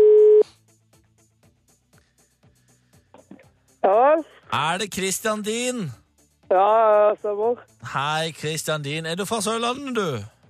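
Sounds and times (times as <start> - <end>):
telephone call tone while dialing: 0.0 - 0.4
speech: 3.8 - 10.4.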